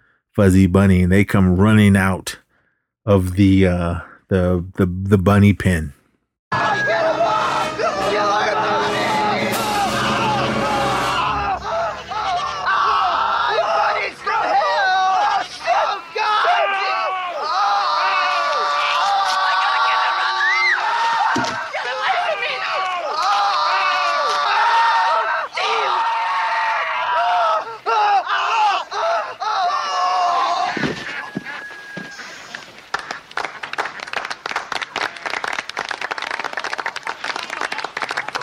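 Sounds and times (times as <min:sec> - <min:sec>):
speech: 0:00.4 - 0:02.4, 0:03.1 - 0:06.6
crowd screaming, shrieking and yelling: 0:06.5 - 0:32.4
crowd cheering: 0:06.5 - 0:38.4.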